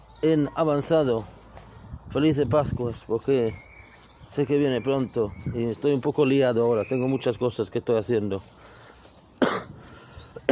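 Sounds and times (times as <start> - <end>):
speech: 0.2 - 1.4, 2.1 - 3.7, 4.3 - 8.6
harsh coughs: 9.4 - 9.8, 10.4 - 10.5.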